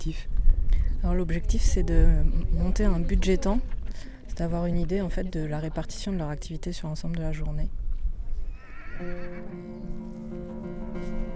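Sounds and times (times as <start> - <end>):
speech: 0.0 - 0.4, 1.0 - 7.8, 9.0 - 11.1
low outdoor rumble: 0.0 - 8.6
Przewalski's horse neighing in Lozère: 8.5 - 9.7.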